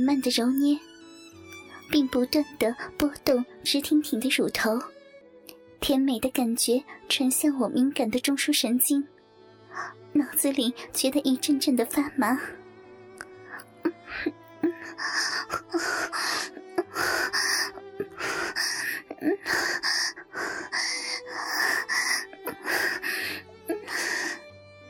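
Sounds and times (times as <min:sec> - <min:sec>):
speech: 0:00.0 - 0:00.9, 0:01.9 - 0:05.0, 0:05.8 - 0:09.1, 0:09.8 - 0:12.6, 0:14.1 - 0:22.0
person gasping and panting heavily: 0:14.0 - 0:24.4.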